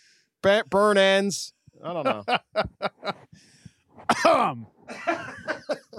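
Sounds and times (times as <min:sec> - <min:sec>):
speech: 0:00.4 - 0:03.5, 0:04.1 - 0:05.8
laughter: 0:02.1 - 0:03.3, 0:04.2 - 0:05.9
person coughing harshly: 0:04.0 - 0:05.9.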